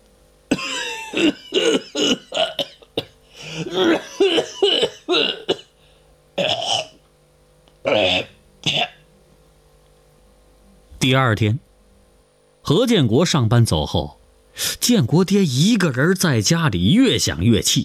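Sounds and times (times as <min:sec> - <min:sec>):
man coughing and spitting phlegm in a bedroom: 0:00.5 - 0:05.7, 0:06.4 - 0:07.0, 0:07.9 - 0:09.0
speech: 0:00.6 - 0:02.6, 0:03.6 - 0:05.5, 0:11.0 - 0:11.7, 0:12.7 - 0:17.8.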